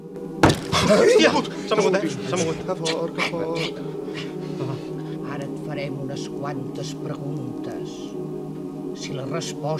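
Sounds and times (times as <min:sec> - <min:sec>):
table jolting against the floor: 0:00.4 - 0:00.9
speech: 0:00.8 - 0:04.3, 0:05.8 - 0:08.4, 0:09.0 - 0:09.7.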